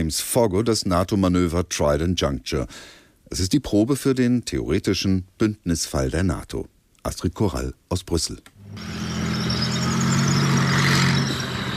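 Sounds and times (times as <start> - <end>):
speech: 0.0 - 9.0
German army tanks driving through thinly snow-covered terrain in Norway: 8.7 - 11.7.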